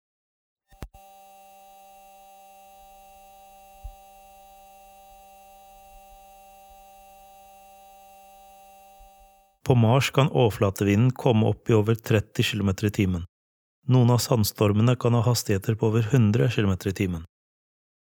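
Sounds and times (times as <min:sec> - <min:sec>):
high-frequency scraping hum from rover electronics on Mars: 0:00.7 - 0:09.4
speech: 0:09.7 - 0:17.3.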